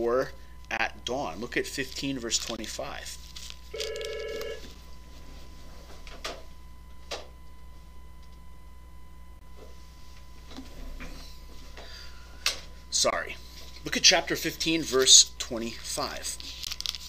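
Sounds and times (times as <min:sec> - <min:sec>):
speech: 0:00.0 - 0:04.0, 0:13.0 - 0:16.5
telephone ringing in a short electronic burst: 0:03.7 - 0:04.7.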